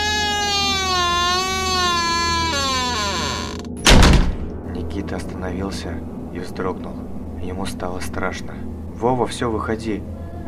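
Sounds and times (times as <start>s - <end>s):
door creaking shut: 0.0s - 4.5s
speech: 5.1s - 10.4s.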